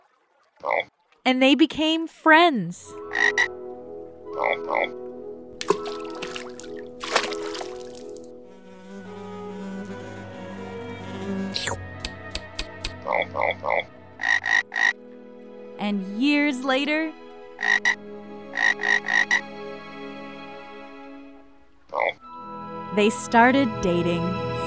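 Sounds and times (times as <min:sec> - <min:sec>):
speech: 0:00.7 - 0:03.6, 0:04.3 - 0:05.0, 0:11.5 - 0:11.9, 0:13.1 - 0:13.9, 0:15.8 - 0:18.1, 0:22.9 - 0:24.5
frog croaking: 0:03.0 - 0:03.5, 0:14.2 - 0:15.0, 0:17.6 - 0:19.5, 0:21.9 - 0:22.2.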